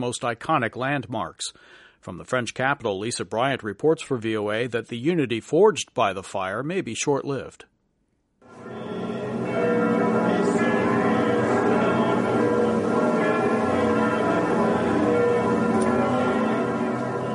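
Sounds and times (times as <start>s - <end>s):
speech: 0.0s - 7.7s
church bells in France ringing: 8.5s - 17.3s.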